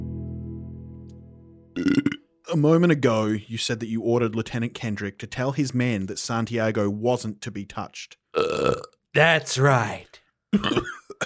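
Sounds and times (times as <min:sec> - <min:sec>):
long deep burp: 0:01.8 - 0:02.3, 0:08.4 - 0:09.0
speech: 0:01.8 - 0:10.9.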